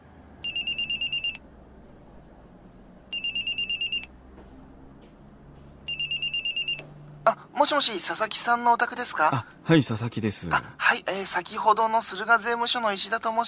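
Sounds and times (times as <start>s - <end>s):
home telephone ringing with electronic trilling: 0.4s - 1.4s, 3.1s - 4.1s, 5.9s - 6.9s
speech: 7.3s - 13.4s.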